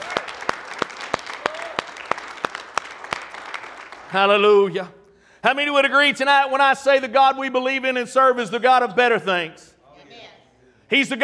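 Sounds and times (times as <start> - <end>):
dense scattered applause: 0.0 - 4.4
crowd clapping in unison rhythm: 0.0 - 4.5
speech: 4.1 - 9.7, 10.9 - 11.2.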